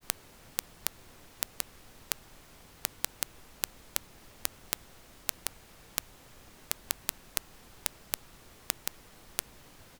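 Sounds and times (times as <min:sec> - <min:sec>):
Dirac pulses at loudspeaker peak SPL: 0:00.0 - 0:09.9.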